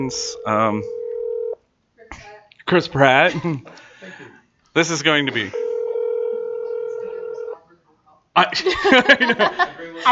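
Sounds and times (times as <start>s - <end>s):
speech: 0.0s - 1.0s, 2.1s - 5.7s, 8.4s - 10.0s
steady buzzing phone ringback tone: 0.0s - 1.6s, 5.5s - 7.6s
laughter: 8.5s - 10.0s.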